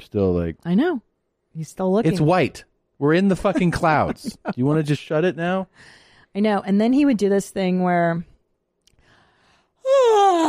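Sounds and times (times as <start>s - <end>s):
speech: 0.1s - 8.3s
laughter: 3.2s - 5.0s
loud drawn-out theatrical yawn: 9.8s - 10.4s.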